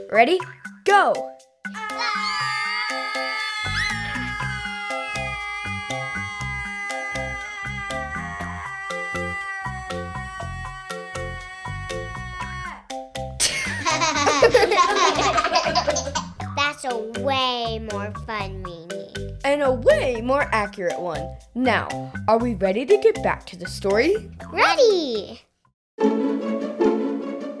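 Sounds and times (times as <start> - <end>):
speech: 0.0 - 1.4, 16.8 - 18.8, 19.4 - 25.5
bouncy musical backing: 0.0 - 25.4, 26.0 - 27.5
crowd of young voices screaming and shrieking excitedly: 1.8 - 12.7
laughter: 13.4 - 16.3.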